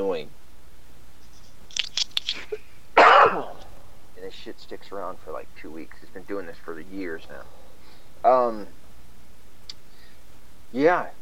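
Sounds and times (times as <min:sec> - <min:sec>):
speech: 0:00.0 - 0:00.4, 0:04.2 - 0:07.6, 0:08.2 - 0:08.8, 0:10.7 - 0:11.1
person coughing: 0:03.0 - 0:03.6.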